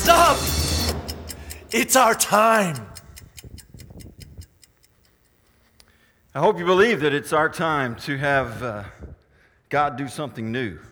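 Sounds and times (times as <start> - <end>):
clock ticking: 0.0 - 6.9
speech: 1.7 - 2.9, 6.4 - 10.9.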